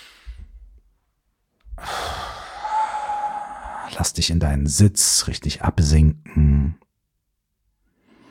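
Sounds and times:
deep breathing in and out during a guided relaxation exercise: 0.0s - 0.7s, 1.7s - 4.0s, 7.9s - 8.3s
speech: 3.9s - 6.8s.

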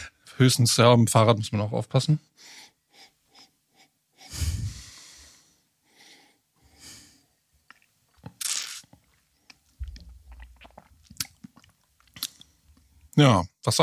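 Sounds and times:
speech: 0.4s - 2.6s, 13.2s - 13.8s
sniffing breaths: 2.4s - 7.3s
wet lip smacks: 7.7s - 12.5s
airy slurps sipping an herbal liqueur: 7.7s - 12.6s.

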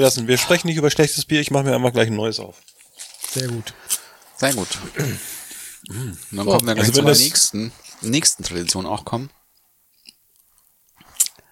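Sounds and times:
speech: 0.0s - 9.4s
person crunching on a snack: 9.9s - 11.4s.

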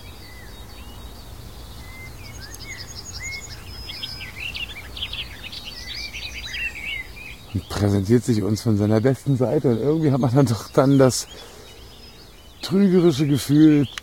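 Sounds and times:
bird singing nonstop in a sunlit sea of blossoms: 0.0s - 14.0s
speech: 7.6s - 11.5s, 12.7s - 14.0s.

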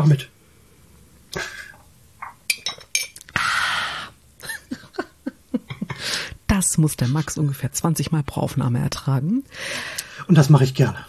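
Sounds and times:
speech: 0.0s - 0.3s, 1.3s - 1.6s, 6.7s - 11.0s
light glassy clinks of a glass: 2.2s - 3.2s.

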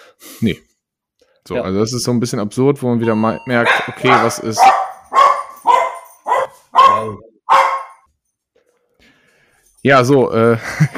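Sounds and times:
speech: 0.4s - 0.7s, 1.5s - 4.8s, 7.0s - 7.3s, 9.8s - 10.9s
dog barking: 3.0s - 8.0s
laughter: 10.6s - 10.9s.

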